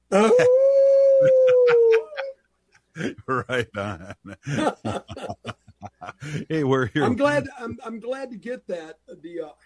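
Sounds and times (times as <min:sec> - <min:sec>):
person imitating a wolf howl: 0:00.1 - 0:02.4
speech: 0:00.2 - 0:00.6, 0:03.3 - 0:05.4, 0:06.2 - 0:09.6
laughter: 0:01.2 - 0:02.3, 0:03.0 - 0:07.8.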